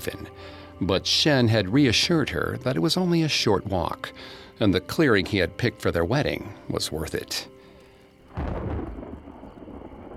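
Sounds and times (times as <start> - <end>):
speech: 0.0 - 7.5
steady falling rain: 8.3 - 10.1
close thunderclap with rolling rumble: 8.4 - 10.1.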